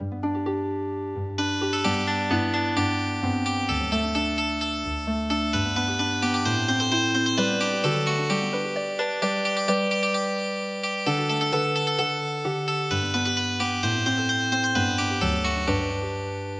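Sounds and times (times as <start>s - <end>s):
traditional MIDI harp melody: 0.0s - 16.5s.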